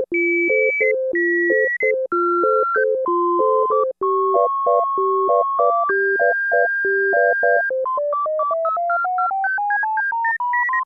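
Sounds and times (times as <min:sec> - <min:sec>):
Roland Juno-60 synthesizer harmonica factory preset: 0:00.2 - 0:10.7.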